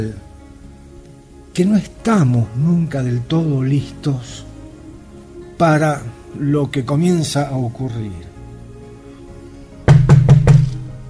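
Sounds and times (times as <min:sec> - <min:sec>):
speech: 0:00.0 - 0:00.3, 0:01.6 - 0:04.5, 0:05.6 - 0:08.3
firm knocks on a door: 0:09.9 - 0:10.8.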